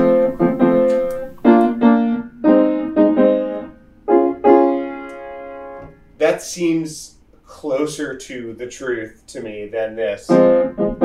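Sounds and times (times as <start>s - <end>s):
piano playing major chords: 0.0s - 6.1s, 10.3s - 11.0s
speech: 6.4s - 10.9s.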